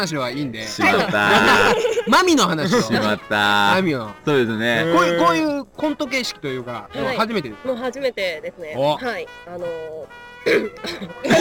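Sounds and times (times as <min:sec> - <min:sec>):
speech: 0:00.0 - 0:11.3
laughter: 0:00.8 - 0:03.3, 0:10.9 - 0:11.3
throat clearing: 0:10.5 - 0:11.3.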